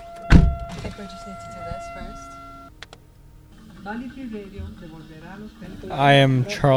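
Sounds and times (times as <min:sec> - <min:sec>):
two-tone electronic chime inside a parked car: 0:00.0 - 0:02.8
sharp thump inside a parked car: 0:00.2 - 0:01.0
voices talking in an enclosed car cabin: 0:00.7 - 0:02.7, 0:03.4 - 0:06.7
speech: 0:00.8 - 0:02.4, 0:03.8 - 0:06.7.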